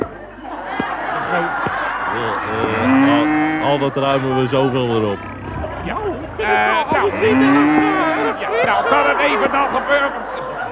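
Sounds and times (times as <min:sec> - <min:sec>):
laughter: 0:00.0 - 0:10.7
small herd of cows mooing: 0:02.6 - 0:04.0, 0:04.7 - 0:08.4
speech: 0:03.7 - 0:10.7.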